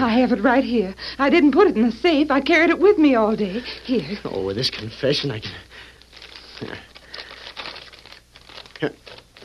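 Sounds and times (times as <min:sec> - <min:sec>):
speech: 0:00.0 - 0:05.7, 0:06.6 - 0:06.9, 0:08.8 - 0:09.2
envelope tearing open: 0:06.0 - 0:09.4
sheet of paper unfolded, crinkling and rustling: 0:06.0 - 0:09.4.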